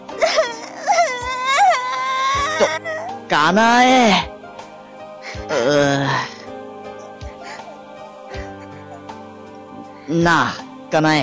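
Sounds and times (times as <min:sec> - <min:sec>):
girl crying: 0:00.2 - 0:03.2, 0:05.3 - 0:06.4, 0:07.0 - 0:09.2
speech: 0:02.6 - 0:04.3, 0:05.4 - 0:06.3, 0:10.1 - 0:11.2.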